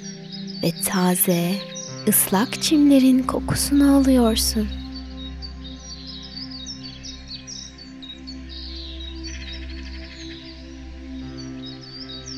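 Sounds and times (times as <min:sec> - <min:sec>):
continuous pulsing insect trill: 0:00.0 - 0:12.3
many small birds chirping and tweeting: 0:00.0 - 0:12.3
speech: 0:00.6 - 0:04.8.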